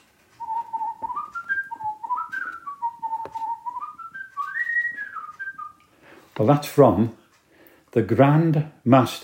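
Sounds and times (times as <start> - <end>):
person whistling a lilting melody: 0.4 - 5.8
speech: 6.4 - 7.2, 7.9 - 9.2.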